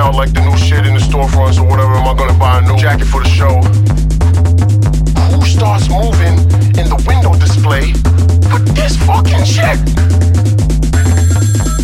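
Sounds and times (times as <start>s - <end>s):
speech: 0.1s - 4.1s, 5.4s - 10.6s
phone ringtone with rhythmic musical pulses over bass: 11.0s - 11.8s.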